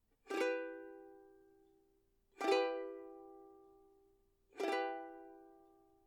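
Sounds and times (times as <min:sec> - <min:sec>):
ukulele E minor chord: 0:00.3 - 0:01.2, 0:02.4 - 0:03.7, 0:04.6 - 0:05.6.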